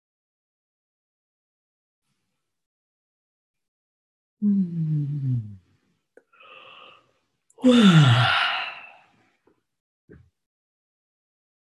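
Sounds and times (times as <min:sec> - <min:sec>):
person yawning while stretching: 0:04.4 - 0:05.6, 0:07.6 - 0:09.0
breathy inhale: 0:06.3 - 0:09.1.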